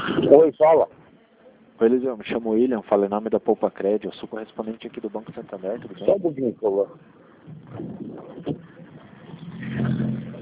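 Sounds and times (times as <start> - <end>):
speech: 0.3 - 1.0, 1.8 - 8.6
road noise: 5.4 - 10.3
car engine rumble: 7.3 - 10.3.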